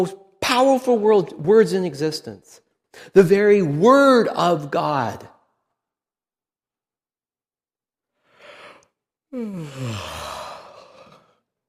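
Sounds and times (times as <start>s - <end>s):
speech: 0.0s - 5.3s, 9.3s - 10.3s
person yawning: 9.3s - 11.4s.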